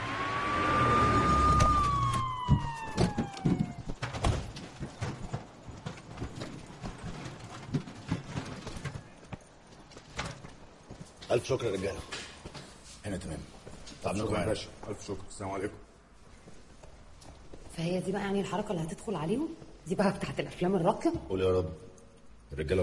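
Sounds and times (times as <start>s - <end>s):
ambulance siren wailing: 0.0s - 4.2s
clattering knocks and bumps: 1.5s - 11.2s
speech: 11.3s - 12.2s, 13.1s - 15.9s, 17.8s - 21.9s, 22.5s - 22.8s.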